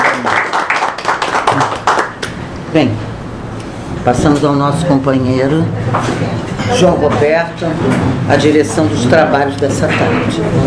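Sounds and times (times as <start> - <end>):
group applauding the national flag at a ceremony: 0.0 - 2.4
speech: 2.8 - 3.1, 4.0 - 10.6.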